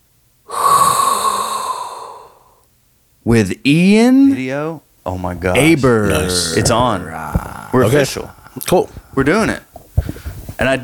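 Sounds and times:
deep hot breath drawn in through the mouth: 0.5 - 2.6, 7.2 - 10.6
speech: 3.3 - 9.7, 10.6 - 10.8.

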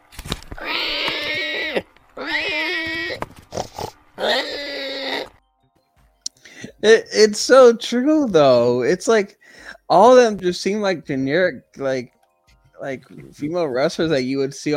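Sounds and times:
pig oinking and grunting: 0.6 - 5.3
speech: 6.8 - 12.2, 12.8 - 14.7.

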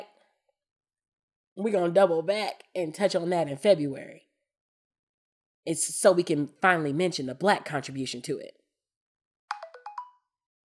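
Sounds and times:
speech: 1.6 - 4.3, 5.6 - 8.6
mobile phone ringtone playing a five-note melodic chime: 9.5 - 10.4.

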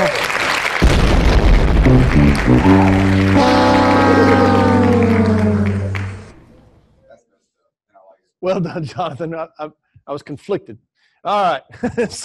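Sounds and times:
loud applause: 0.0 - 6.4
explosion sound effect boom-like burst: 0.8 - 6.4
sustained brassy horn-like chord: 1.8 - 6.4
speech: 1.9 - 4.5, 8.4 - 12.2.

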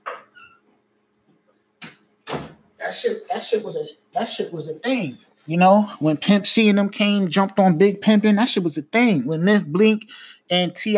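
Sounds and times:
door thumping shut and latching: 2.2 - 2.6
speech: 2.8 - 10.9.

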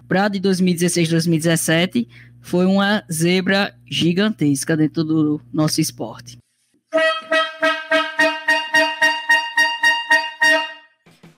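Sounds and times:
speech: 0.1 - 7.4
loud horn blaring in bright brassy honks: 6.9 - 11.0.

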